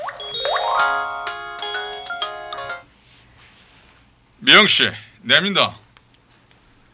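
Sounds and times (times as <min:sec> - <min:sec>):
electronic phone ringtone: 0:00.2 - 0:02.9
speech: 0:04.4 - 0:05.8.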